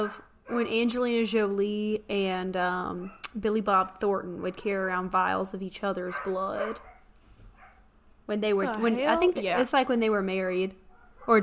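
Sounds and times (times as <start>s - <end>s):
speech: 0.0s - 6.9s, 8.3s - 11.4s
dog barking: 6.1s - 7.9s, 10.9s - 11.4s.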